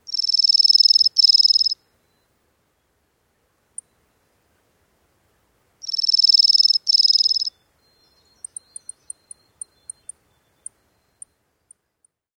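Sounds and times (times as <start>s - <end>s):
bird song: 0.0s - 3.0s, 3.7s - 4.4s, 5.8s - 12.2s.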